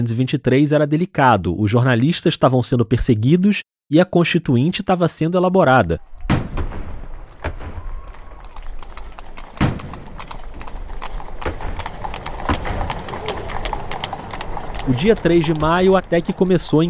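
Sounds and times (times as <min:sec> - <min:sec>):
speech: 0:00.0 - 0:06.2, 0:14.9 - 0:16.8
carriage horse hooves clip-clopping on a hard surface: 0:06.0 - 0:16.8.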